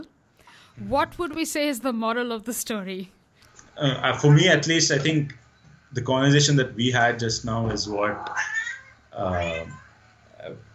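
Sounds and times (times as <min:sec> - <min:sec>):
speech: 0:00.8 - 0:03.2, 0:03.8 - 0:08.6, 0:09.2 - 0:09.8, 0:10.4 - 0:10.7
pet cat meowing: 0:08.0 - 0:09.9.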